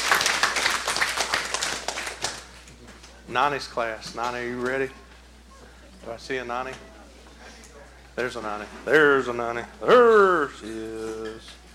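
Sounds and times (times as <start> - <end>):
audience hand clapping: 0.0 - 2.7
speech: 3.3 - 5.0, 6.0 - 6.9, 8.2 - 11.6.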